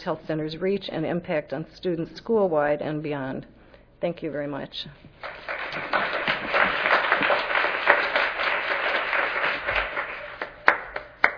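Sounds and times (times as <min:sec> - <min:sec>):
speech: 0:00.0 - 0:06.0
audience applause for a panel: 0:05.2 - 0:11.3.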